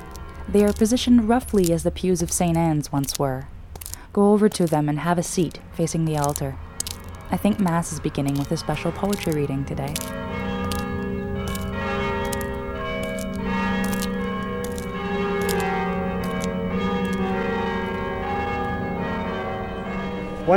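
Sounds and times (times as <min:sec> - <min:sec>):
several church bells pealing: 0:00.1 - 0:02.3, 0:06.4 - 0:20.5
speech: 0:00.5 - 0:03.5, 0:04.2 - 0:06.6, 0:07.3 - 0:10.2.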